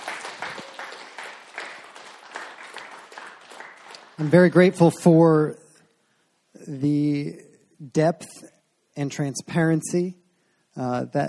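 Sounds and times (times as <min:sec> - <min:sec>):
crowd applauding: 0:00.0 - 0:04.7
speech: 0:04.2 - 0:05.6, 0:06.7 - 0:10.2, 0:10.8 - 0:11.2.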